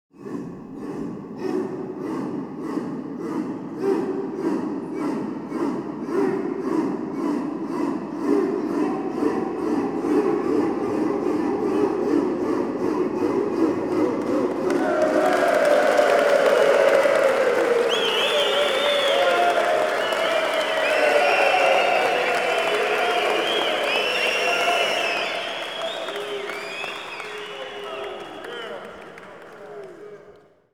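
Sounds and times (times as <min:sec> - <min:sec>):
100 men chanting: 0:00.2 - 0:30.4
100 men cheering: 0:13.6 - 0:30.0.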